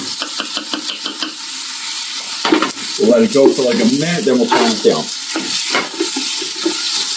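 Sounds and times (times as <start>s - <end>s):
food sizzling in a hot pan: 0.0s - 7.1s
speech: 3.0s - 5.2s
rhythmic stirring scrapes in a pan: 4.5s - 7.1s.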